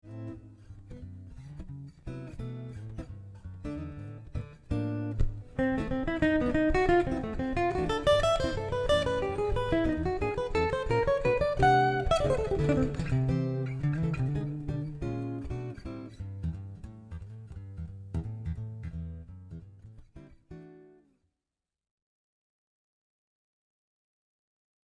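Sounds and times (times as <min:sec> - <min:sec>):
jazz improvised melodic line in triads: 0:03.8 - 0:19.8.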